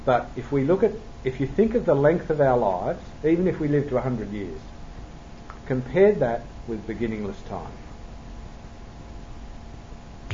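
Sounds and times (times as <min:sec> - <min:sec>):
speech: 0:00.0 - 0:04.7, 0:05.7 - 0:07.8
hiss: 0:00.0 - 0:10.3
finger snap: 0:05.4 - 0:05.6.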